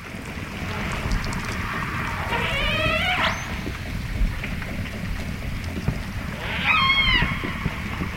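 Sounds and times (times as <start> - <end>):
steady underwater rumble: 0.0 - 8.1
faint rapid ticking of echolocation clicks from hunting orcas: 1.0 - 1.7
rising whistly orca family calls: 1.6 - 3.6, 6.4 - 7.6.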